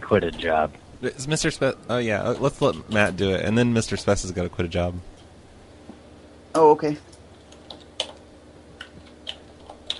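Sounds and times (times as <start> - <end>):
speech: 0.1 - 5.1, 6.6 - 7.2
typing on a computer keyboard: 7.4 - 8.2, 8.8 - 9.9.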